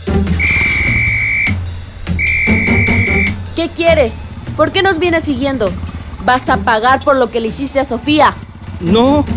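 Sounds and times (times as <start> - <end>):
loud music: 0.1 - 3.6
safety whistle blown as an alarm: 0.3 - 3.7
speech: 3.7 - 9.3.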